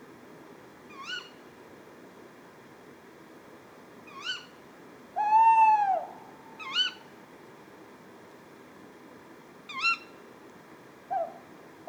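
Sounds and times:
tawny owl Strix aluco wavering hoot at night: 5.2 - 7.0, 11.1 - 11.5.

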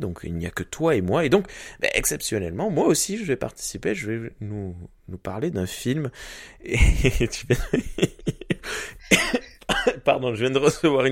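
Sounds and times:
speech: 0.0 - 11.0
laughter: 6.8 - 8.6
raspy gasp: 8.6 - 9.6
person coughing after choking: 9.0 - 10.1.

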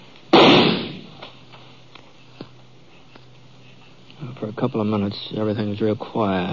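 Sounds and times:
gunshot echoing in a canyon: 0.3 - 1.2
speech: 4.5 - 6.5.

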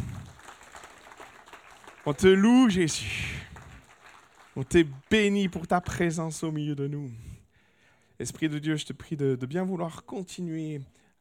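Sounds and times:
audience applauding at a morning church service: 0.0 - 6.0
speech: 2.0 - 3.4, 4.6 - 7.3, 8.2 - 11.1.

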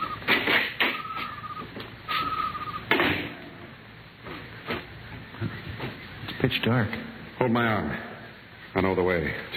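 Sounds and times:
squeaky door creak: 0.0 - 3.3
speech: 6.5 - 8.1, 8.8 - 9.5.

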